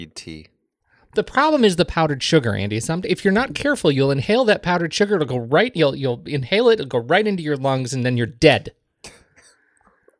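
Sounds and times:
speech: 0:00.0 - 0:08.8
breathy throat sounds: 0:09.0 - 0:10.1
person coughing: 0:09.0 - 0:10.1.

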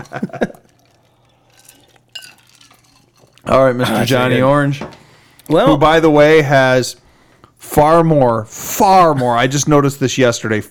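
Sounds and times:
speech: 0:00.0 - 0:00.6, 0:03.5 - 0:07.0, 0:07.6 - 0:10.6
glasses clinking in a toast: 0:00.0 - 0:03.4.

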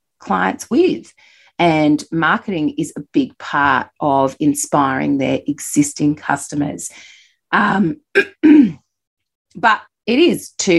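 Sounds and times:
speech: 0:00.2 - 0:08.8, 0:09.6 - 0:10.7
person clearing throat: 0:07.7 - 0:08.8.

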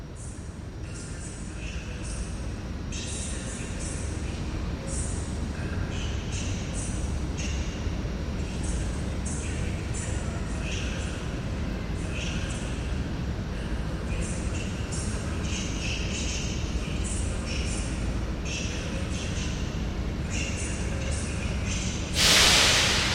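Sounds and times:
low rumble of a train at a station platform: 0:00.2 - 0:23.1
clattering, hissing bursts: 0:22.2 - 0:23.1.

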